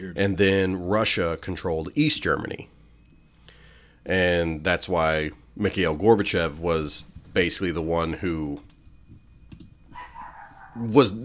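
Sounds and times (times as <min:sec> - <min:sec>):
speech: 0:00.0 - 0:02.8, 0:04.0 - 0:08.7, 0:10.8 - 0:11.2
small female dog barking outside: 0:09.9 - 0:10.8.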